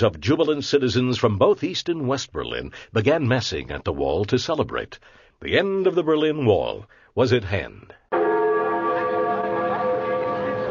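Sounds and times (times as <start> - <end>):
speech: 0.0 - 8.0
large bell ringing: 8.1 - 10.6.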